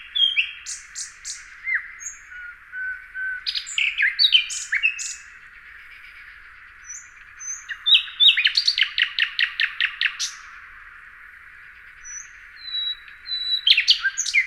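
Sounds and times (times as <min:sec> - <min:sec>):
common nightingale Luscinia megarhynchos singing: 0:00.0 - 0:10.7, 0:11.7 - 0:14.4.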